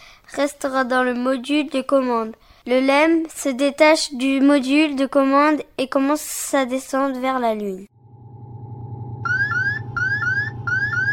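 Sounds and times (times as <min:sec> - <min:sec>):
speech: 0:00.4 - 0:07.9
lunar module computer program alarm beeping: 0:08.2 - 0:11.1.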